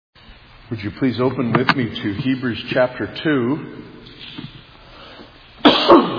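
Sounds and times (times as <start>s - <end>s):
speech: 0.7s - 4.5s
preacher with a seasonal cold coughing: 5.6s - 6.1s.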